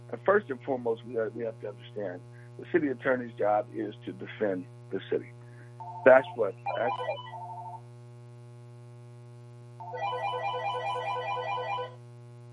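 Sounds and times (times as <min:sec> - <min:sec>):
steady low electrical hum: 0:00.0 - 0:12.5
speech: 0:00.1 - 0:05.4, 0:06.0 - 0:07.3
phone ringing with rapid warbling electronic trill: 0:05.8 - 0:07.8, 0:09.8 - 0:12.0.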